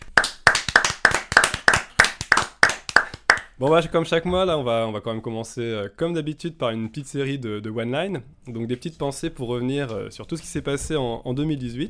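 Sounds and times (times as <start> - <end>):
steady rhythmic hand clapping: 0.0 - 3.6
speech: 3.6 - 11.8.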